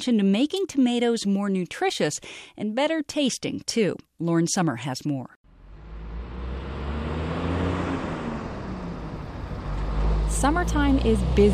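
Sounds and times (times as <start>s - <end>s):
speech: 0.0s - 5.4s, 10.3s - 11.5s
line of heavy trucks rumbling outside a processing plant: 5.5s - 11.5s
road noise: 5.5s - 11.5s.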